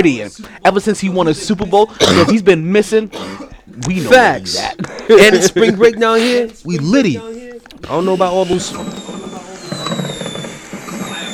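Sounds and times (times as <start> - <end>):
speech: 0.0 - 9.0
laughter: 3.9 - 6.8
fireworks crackling and popping: 7.7 - 11.3
thin high whine: 7.8 - 11.3.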